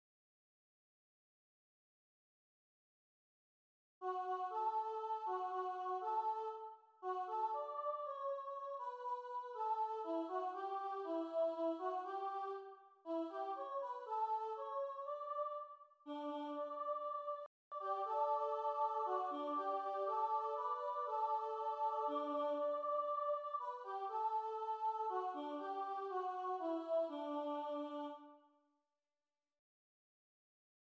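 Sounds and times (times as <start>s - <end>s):
soprano singing a lullaby: 4.0s - 28.4s.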